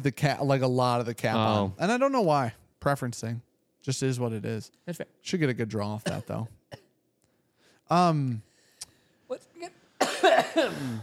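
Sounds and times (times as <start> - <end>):
speech: 0.0 - 6.8, 7.9 - 8.5, 9.3 - 11.0
person coughing from a piece caught in the throat: 6.0 - 6.9, 10.0 - 11.0.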